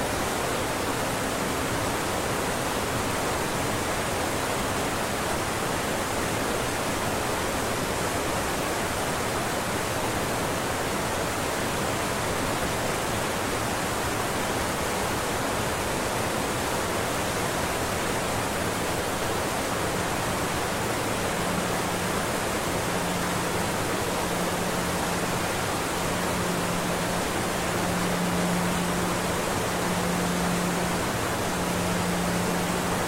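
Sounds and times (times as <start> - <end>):
waterfall roaring: 0.0 - 33.0
faint pulsing low hum: 18.3 - 33.0.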